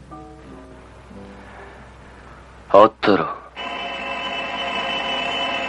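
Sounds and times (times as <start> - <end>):
speech: 2.7 - 3.4
telephone ringing with a continuous electronic tone: 3.6 - 5.6.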